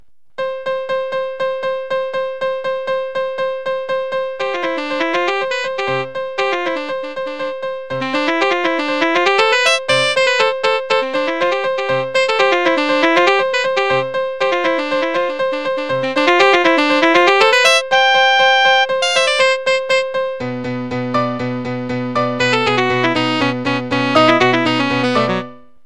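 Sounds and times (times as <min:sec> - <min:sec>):
piano: 0:00.4 - 0:25.8
saxophone: 0:04.5 - 0:20.2, 0:22.4 - 0:25.6.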